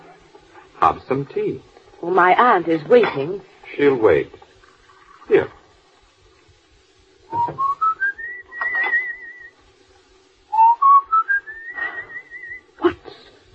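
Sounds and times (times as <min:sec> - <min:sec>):
speech: 0:00.8 - 0:04.4, 0:05.3 - 0:05.6, 0:07.3 - 0:07.7
person whistling a short rising tune: 0:07.3 - 0:09.5, 0:10.5 - 0:12.7.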